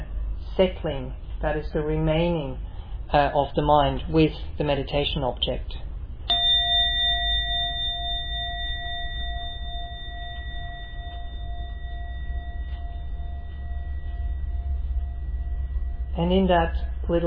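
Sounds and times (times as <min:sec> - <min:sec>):
low rumble: 0:00.0 - 0:17.2
speech: 0:00.6 - 0:05.9, 0:16.2 - 0:17.2
meditation singing bowl struck and ringing: 0:06.3 - 0:17.2.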